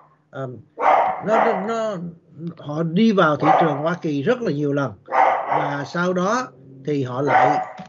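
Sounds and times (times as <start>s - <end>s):
speech: 0.3s - 7.8s
pet dog barking in a house: 0.8s - 1.9s, 3.4s - 4.0s, 5.1s - 5.9s, 7.2s - 7.8s.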